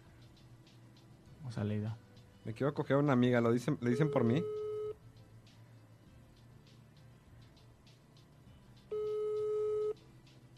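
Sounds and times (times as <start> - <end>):
speech: 1.4 - 4.6
ringing tone of an unanswered outgoing telephone call: 4.0 - 4.9, 8.9 - 10.0.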